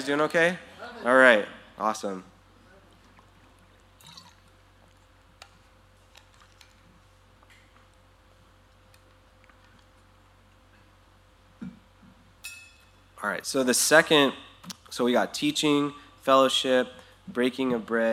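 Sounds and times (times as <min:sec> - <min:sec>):
speech: 0:00.0 - 0:02.3, 0:13.2 - 0:18.1
water pouring: 0:04.0 - 0:04.5.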